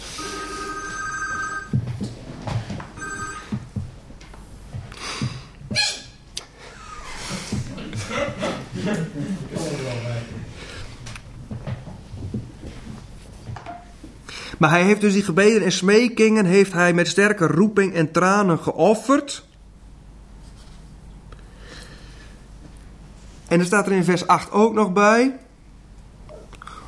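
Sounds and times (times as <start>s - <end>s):
telephone ringing with electronic tones: 0.0s - 1.8s, 3.0s - 3.7s
low noise: 0.0s - 26.8s
laughter: 6.6s - 10.4s
speech: 14.6s - 19.5s, 23.5s - 25.4s.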